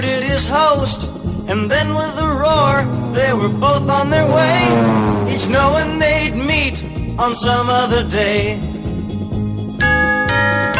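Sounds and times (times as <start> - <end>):
low musical backing: 0.0 - 9.8
speech: 0.5 - 8.7
Christmas bells ringing: 9.8 - 10.7.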